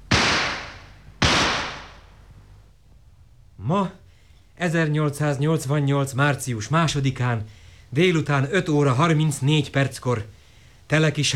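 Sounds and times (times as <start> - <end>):
signal shots fired from a rifle: 0.0 - 2.2
speech: 3.6 - 4.0, 4.6 - 11.3.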